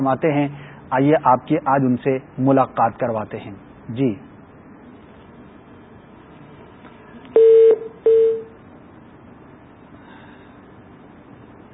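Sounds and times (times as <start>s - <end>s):
speech: 0.0s - 4.3s
telephone tones as a phone call drops: 7.4s - 8.6s.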